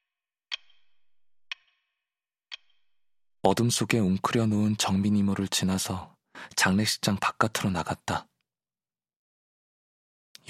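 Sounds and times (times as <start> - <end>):
clock second hand ticking: 0.5 - 1.7, 2.5 - 2.9
speech: 3.4 - 8.3.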